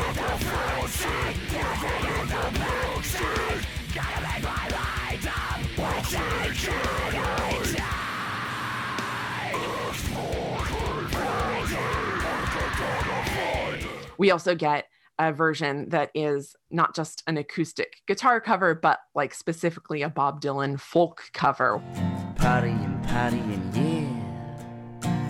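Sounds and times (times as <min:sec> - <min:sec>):
rapid pounding death metal drum track: 0:00.0 - 0:14.1
harsh screamed death-metal vocals: 0:00.0 - 0:14.2
screaming metal guitars: 0:00.0 - 0:14.2
speech: 0:14.2 - 0:24.1.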